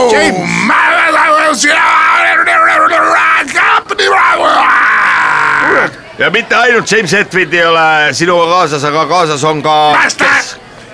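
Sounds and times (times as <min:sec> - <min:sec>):
man yelling loudly and hoarsely: 0:00.0 - 0:05.9, 0:09.9 - 0:10.6
speech: 0:06.2 - 0:10.6.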